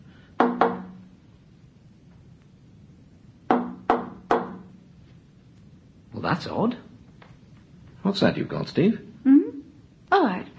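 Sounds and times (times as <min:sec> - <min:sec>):
firm knocks on a wooden door: 0:00.4 - 0:01.0, 0:03.5 - 0:04.7
speech: 0:06.3 - 0:06.9, 0:08.1 - 0:09.4.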